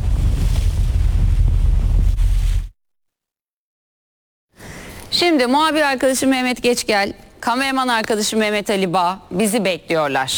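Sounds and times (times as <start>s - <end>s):
loud blustery wind buffeting the microphone on a boat at sea: 0.0s - 2.7s
speech: 5.2s - 10.3s.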